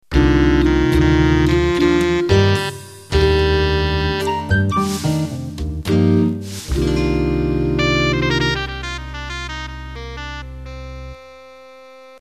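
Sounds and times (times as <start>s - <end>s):
slow jazz music: 0.0s - 12.2s.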